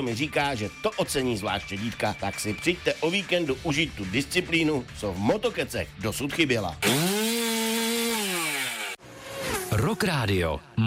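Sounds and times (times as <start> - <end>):
speech: 0.0 - 7.0, 9.9 - 10.8
chainsaw engine whining: 6.8 - 10.7.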